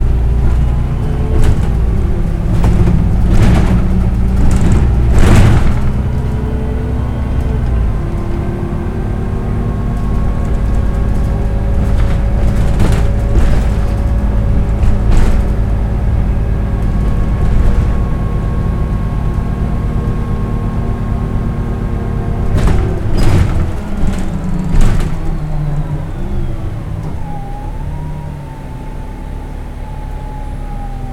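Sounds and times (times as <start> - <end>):
bus: 0.0 - 31.1.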